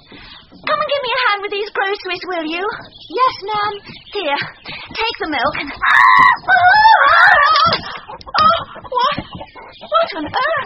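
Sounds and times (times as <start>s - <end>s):
speech: 1.4s - 7.8s, 10.1s - 10.6s
giant hen clucking and squawking loudly: 3.6s - 10.6s.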